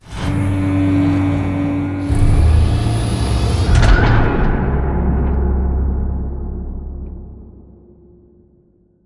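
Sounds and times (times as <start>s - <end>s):
giant mechanical floor panel assembling and rotating: 0.1s - 5.8s.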